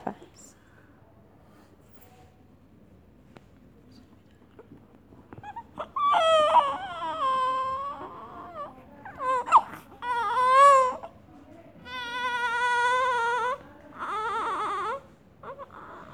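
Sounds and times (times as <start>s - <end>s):
newborn baby crying in a maternity hospital: 5.4s - 11.2s, 11.8s - 16.1s.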